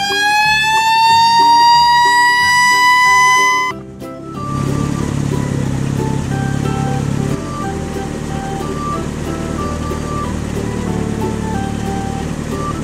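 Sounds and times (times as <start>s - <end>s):
red fire truck siren wailing: 0.0s - 12.8s.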